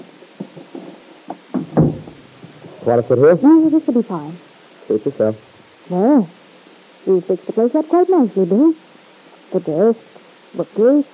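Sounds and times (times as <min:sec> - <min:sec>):
cottage door being opened from inside: 0:01.6 - 0:02.9
speech: 0:02.8 - 0:06.4, 0:07.0 - 0:08.8, 0:09.5 - 0:11.1.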